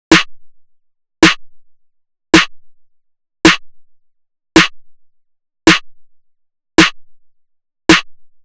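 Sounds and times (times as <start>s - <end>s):
experimental drum loop with snare at 108 BPM: 0.1s - 0.4s, 1.2s - 1.5s, 2.4s - 2.6s, 3.5s - 3.7s, 4.6s - 4.8s, 5.7s - 5.9s, 6.8s - 7.0s, 7.9s - 8.3s.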